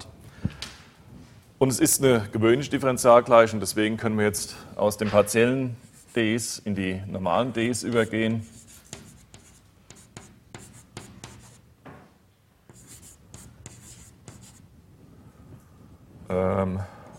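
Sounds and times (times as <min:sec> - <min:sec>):
speech: 0:01.6 - 0:08.6
scratchy writing strokes during a mathematics lecture: 0:05.8 - 0:06.5, 0:07.6 - 0:11.7, 0:12.7 - 0:14.7.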